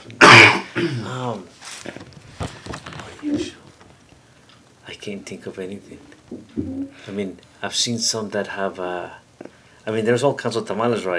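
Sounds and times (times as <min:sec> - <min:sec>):
rough voiced throat sound: 0:00.1 - 0:01.2
person coughing: 0:00.2 - 0:01.2
speech: 0:00.8 - 0:02.2, 0:05.0 - 0:09.2, 0:09.8 - 0:11.1.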